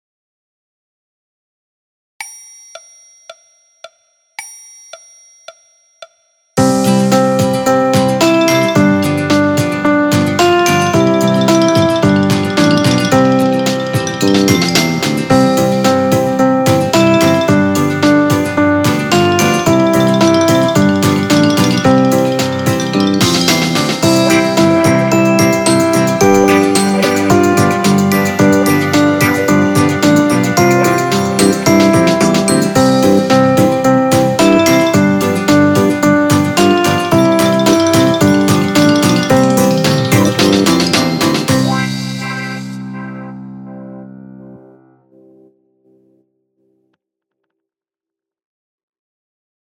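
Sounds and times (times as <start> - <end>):
piano with orchestra: 6.7 - 41.5.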